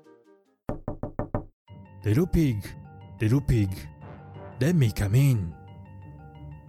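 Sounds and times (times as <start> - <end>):
knocking on a wooden door: 0.7 - 1.6
speech: 2.0 - 3.9, 4.6 - 5.6.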